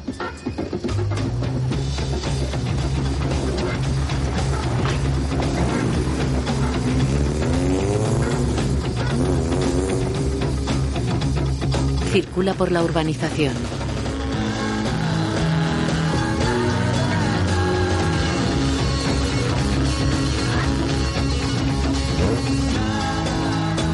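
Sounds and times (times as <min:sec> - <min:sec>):
car engine driving out through an opening gate of a residential plot: 0:00.8 - 0:23.8
speech: 0:12.2 - 0:13.8.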